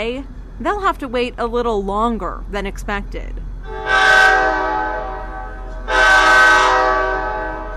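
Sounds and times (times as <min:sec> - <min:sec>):
speech: 0:00.0 - 0:03.8
low rumble of approaching passenger train: 0:00.0 - 0:07.7
passenger train horn blasts arriving at Indianapolis station: 0:03.6 - 0:07.7.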